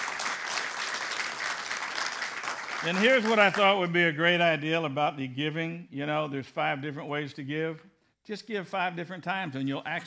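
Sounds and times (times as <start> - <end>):
congregation clapping hands in praise at a church service: 0.0 - 4.0
speech: 2.8 - 10.0.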